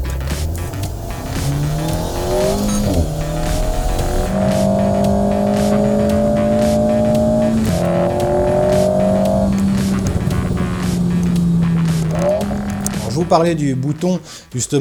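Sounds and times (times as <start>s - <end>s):
mid-rear-engined 1800 cc turbo sports car with aluminium body revving through the gears: 0.0s - 14.4s
faint tire squeal: 0.0s - 14.5s
speech: 13.3s - 14.7s.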